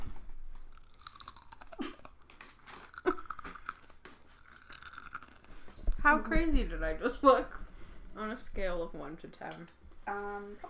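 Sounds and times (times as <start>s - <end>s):
person crunching and chewing a crisp Sun chip into a microphone: 0.4s - 5.9s
speech: 6.1s - 7.6s, 8.2s - 10.6s.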